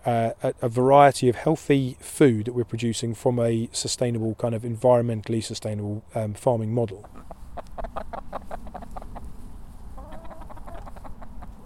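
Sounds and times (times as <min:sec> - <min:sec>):
speech: 0:00.0 - 0:07.4
constant low outdoor rumble: 0:00.0 - 0:11.6
chickens clucking outdoors on a farm: 0:06.9 - 0:11.6.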